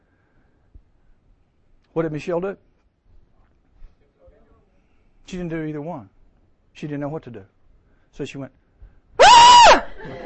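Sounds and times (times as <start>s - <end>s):
faint noise: 0.0s - 10.2s
speech: 2.0s - 2.7s, 5.3s - 6.2s, 6.8s - 8.6s
person imitating a girl's high-pitched scream: 9.2s - 9.9s.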